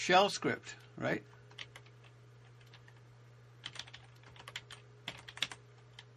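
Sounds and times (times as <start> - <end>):
speech: 0.0 - 1.4
typing on a computer keyboard: 1.5 - 3.0, 3.6 - 6.1.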